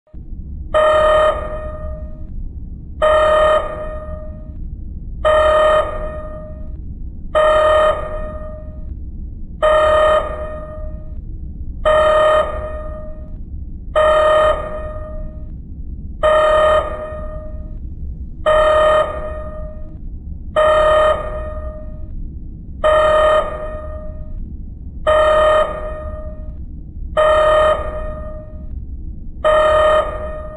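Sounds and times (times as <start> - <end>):
red alert alarm: 0.8 - 2.3, 3.0 - 4.6, 5.2 - 6.8, 7.4 - 8.9, 9.6 - 11.2, 11.9 - 13.4, 14.0 - 15.6, 16.2 - 17.8, 18.5 - 20.0, 20.6 - 22.1, 22.8 - 24.4, 25.1 - 26.6, 27.2 - 28.8, 29.4 - 30.5.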